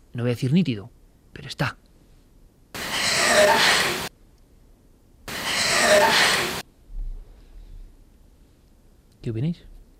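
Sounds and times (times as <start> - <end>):
speech: 0.2 - 1.8, 9.2 - 9.8
laboured raspy breathing in a paranormal voice recording: 2.8 - 4.1, 5.3 - 6.6.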